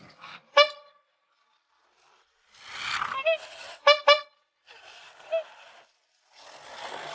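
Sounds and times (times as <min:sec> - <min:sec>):
red toy car horn honking: 0:03.2 - 0:04.5.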